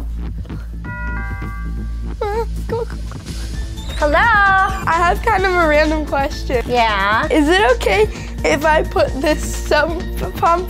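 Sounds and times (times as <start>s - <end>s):
electronic doorbell chime: 0.9s - 2.2s
short warbling melodic notes: 0.9s - 2.4s
speech: 4.0s - 10.6s.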